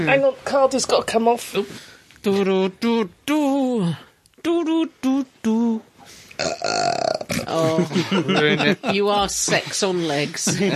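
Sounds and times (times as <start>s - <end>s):
speech: 0.0s - 10.7s
person burping: 6.4s - 8.4s
laughter: 7.5s - 10.7s.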